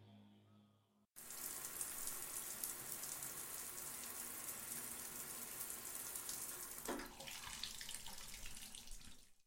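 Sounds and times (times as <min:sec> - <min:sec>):
cold shower water running: 0:01.2 - 0:09.4.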